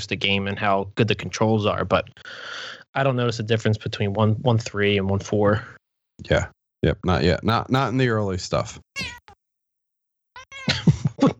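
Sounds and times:
speech: 0.0s - 9.2s
cat yowling: 9.0s - 9.4s, 10.4s - 10.8s.

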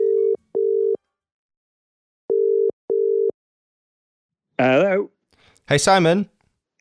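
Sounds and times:
telephone line tone while a call connects: 0.0s - 1.0s, 2.3s - 3.3s
speech: 4.6s - 5.1s, 5.7s - 6.4s.

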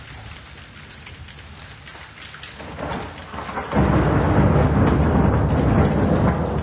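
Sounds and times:
heavy rain in a thunderstorm: 0.0s - 6.6s
thunder rumbling in a thunderstorm: 2.6s - 6.6s.

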